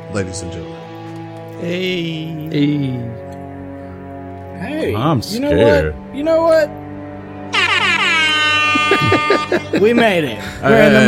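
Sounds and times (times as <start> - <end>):
speech: 0.1 - 0.8, 1.6 - 3.3, 4.6 - 6.8, 9.2 - 11.0
loud sustained air horn blast: 7.2 - 10.0
laughter: 8.0 - 11.0.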